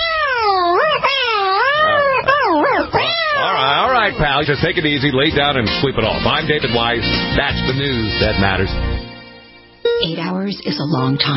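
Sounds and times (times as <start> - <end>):
inebriated cat yowling: 0.0 - 4.2
speech: 4.1 - 9.0, 10.0 - 11.3.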